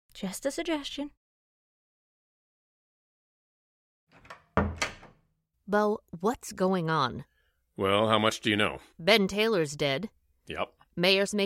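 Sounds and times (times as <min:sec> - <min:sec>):
speech: 0:00.2 - 0:01.2, 0:05.7 - 0:11.4
bedroom door handle rattling: 0:04.1 - 0:05.2.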